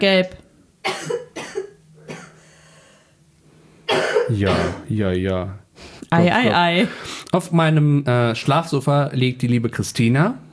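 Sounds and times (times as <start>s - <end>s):
speech: 0.0s - 0.4s, 4.3s - 10.5s
person coughing harshly: 0.8s - 2.4s, 3.9s - 4.9s.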